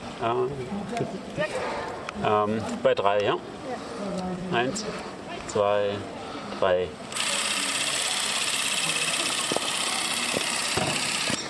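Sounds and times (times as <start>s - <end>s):
speech: 0.2s - 7.0s
Super 8 film camera motor running: 7.1s - 11.4s.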